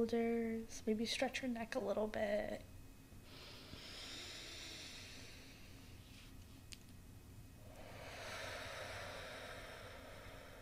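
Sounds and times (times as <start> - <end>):
speech: 0.0 - 2.7
deep breathing in through the nose and out through the mouth: 3.2 - 6.3, 7.6 - 10.6.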